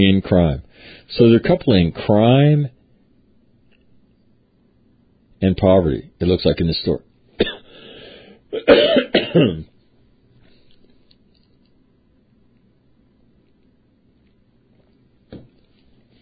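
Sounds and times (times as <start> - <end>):
speech: 0.0 - 2.8, 5.4 - 7.6, 8.5 - 9.7
person coughing in a coughing fit: 7.4 - 7.8, 8.5 - 9.7
throat clearing: 8.5 - 9.7.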